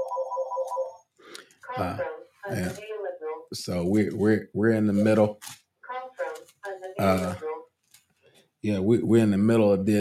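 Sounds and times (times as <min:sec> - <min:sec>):
telephone ringing with a warbling electronic tone: 0:00.0 - 0:01.1
speech: 0:01.8 - 0:02.9, 0:03.5 - 0:05.5, 0:07.0 - 0:07.5, 0:08.6 - 0:09.9.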